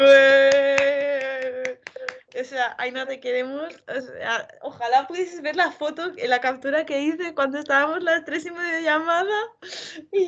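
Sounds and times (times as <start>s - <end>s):
hand claps: 0.2s - 2.4s
speech: 2.5s - 10.2s.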